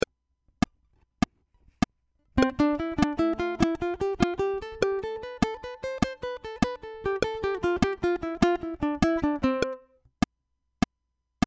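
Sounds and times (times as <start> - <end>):
C scale in tresillo rhythm: 2.4 - 9.8.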